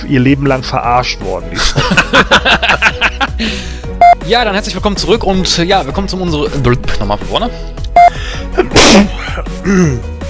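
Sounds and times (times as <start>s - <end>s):
speech: 0.0s - 10.1s
laughter: 1.6s - 3.6s
sharp intake of breath: 8.1s - 8.5s
person sneezing: 8.6s - 10.0s.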